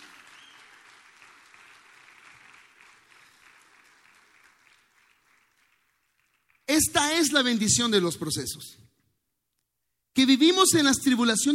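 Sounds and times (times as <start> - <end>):
audience applauding: 0.0 - 7.1
speech: 6.8 - 9.0, 10.2 - 11.5.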